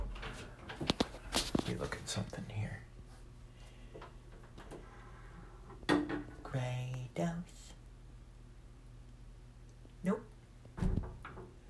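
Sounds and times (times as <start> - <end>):
low steady hum: 0.0 - 11.6
speech: 2.1 - 2.5
door blown shut by the wind: 10.8 - 11.5.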